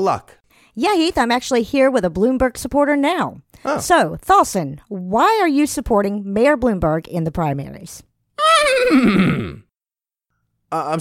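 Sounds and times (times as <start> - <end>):
speech: 0.0 - 9.6, 10.7 - 10.9
horse whinnying: 8.4 - 9.7.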